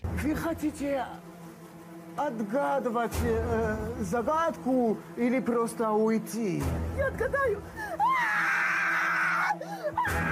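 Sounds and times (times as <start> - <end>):
speech: 0.2 - 1.3, 2.2 - 7.8
woman screaming in a glass booth full of flies and cockroaches: 7.2 - 10.2.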